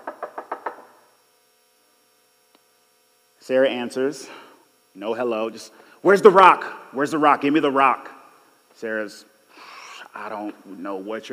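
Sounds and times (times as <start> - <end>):
knocking on a door: 0.0 - 0.9
speech: 3.5 - 8.1, 8.8 - 11.3.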